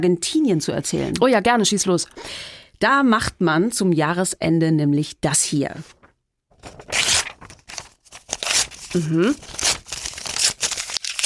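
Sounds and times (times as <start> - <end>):
speech: 0.0 - 6.0, 6.6 - 7.0, 8.9 - 9.6
paper being torn into small scraps: 6.6 - 11.2
person murmuring an acknowledgement: 8.9 - 9.5.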